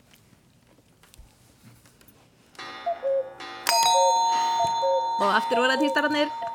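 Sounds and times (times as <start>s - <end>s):
cuckoo clock ringing chime tones: 2.6s - 6.5s
speech: 5.2s - 6.4s.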